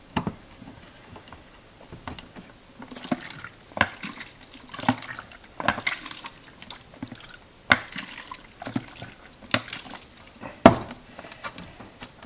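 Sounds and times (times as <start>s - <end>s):
liquid sloshing inside a closed film developing tank being inverted: 2.8s - 10.4s.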